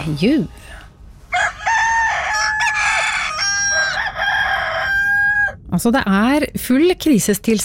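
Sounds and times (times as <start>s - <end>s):
speech: 0.0s - 0.8s, 5.8s - 7.6s
rooster crowing: 1.3s - 5.6s.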